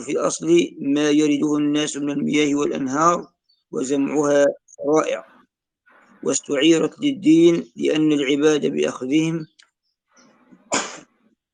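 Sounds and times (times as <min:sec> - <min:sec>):
speech: 0:00.0 - 0:05.3, 0:06.2 - 0:09.6
sneeze: 0:10.7 - 0:11.1.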